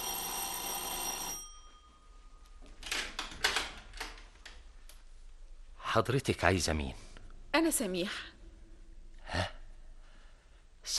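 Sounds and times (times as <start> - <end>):
doorbell ringing: 0.0 - 2.7
speech: 6.0 - 7.0, 7.6 - 8.3.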